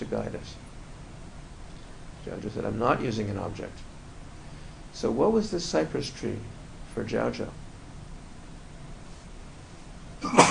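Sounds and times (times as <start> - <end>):
speech: 0.0 - 0.7, 2.2 - 3.9, 5.0 - 7.6
room hiss: 0.0 - 10.4
person sneezing: 10.2 - 10.4.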